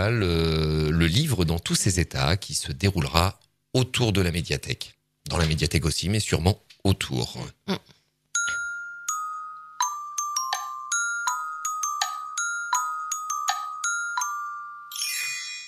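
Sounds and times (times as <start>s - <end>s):
speech: 0.0s - 7.9s
small chime ringing bright struck notes with a glittery flourish: 8.4s - 15.6s.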